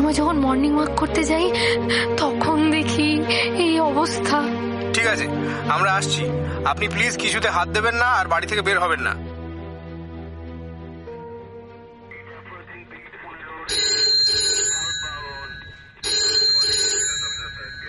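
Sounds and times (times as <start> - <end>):
music: 0.0 - 17.8
speech: 0.1 - 9.3
desk telephone ringing with a metallic bell tone: 13.6 - 17.8.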